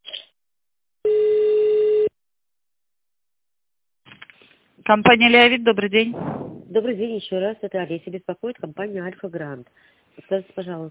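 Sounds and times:
telephone ringback tone during call transfer: 0:01.1 - 0:02.1
speech: 0:04.9 - 0:10.8.

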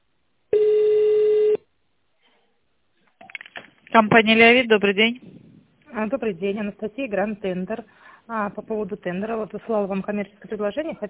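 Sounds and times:
telephone ringback tone during call transfer: 0:00.5 - 0:01.6
faint scattered noises: 0:02.0 - 0:11.0
speech: 0:04.0 - 0:05.4, 0:06.0 - 0:11.0.

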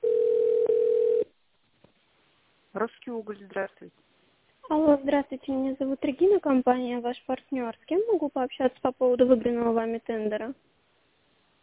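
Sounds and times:
telephone ringing tone beep while a call is transferred: 0:00.0 - 0:01.3
speech: 0:02.8 - 0:04.1, 0:04.7 - 0:10.7.

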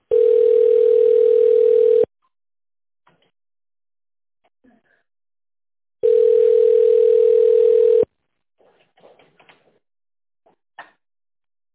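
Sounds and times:
telephone ringback tone while connecting call to an operator: 0:00.1 - 0:02.1, 0:06.0 - 0:08.1.

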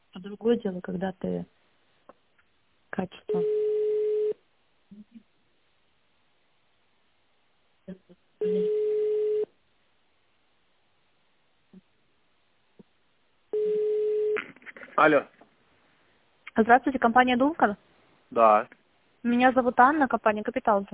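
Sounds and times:
speech: 0:00.2 - 0:01.6, 0:03.0 - 0:03.7, 0:07.9 - 0:09.0, 0:15.0 - 0:15.3, 0:16.6 - 0:20.9
telephone ringback tone through a narrow phone line: 0:03.3 - 0:04.4, 0:08.4 - 0:09.5, 0:13.6 - 0:14.4.

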